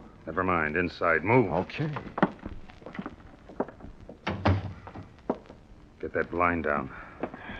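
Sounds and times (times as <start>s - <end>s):
speech: 0.2s - 2.2s, 6.0s - 7.1s
motel room door thudding shut: 4.2s - 5.1s.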